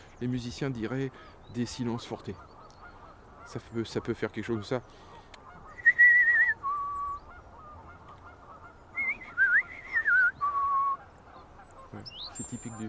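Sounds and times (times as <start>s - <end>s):
faint noise: 0.0s - 12.8s
speech: 0.2s - 2.5s, 3.5s - 5.1s
person whistling an imitation of European robin song: 5.7s - 7.3s, 9.0s - 11.0s.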